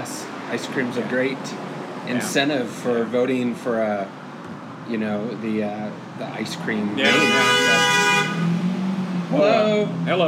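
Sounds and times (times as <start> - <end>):
low rumble of the passing vehicle's engine: 0.0 - 10.2
speech: 0.5 - 4.2, 4.9 - 7.8, 9.3 - 10.2
car horn honking from a car driving by: 7.0 - 8.6.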